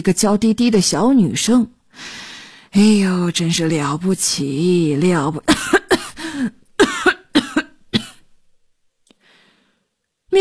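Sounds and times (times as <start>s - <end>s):
speech: 0.0s - 6.6s
elderly man coughing in harsh raspy bouts: 5.5s - 6.2s, 6.8s - 8.2s.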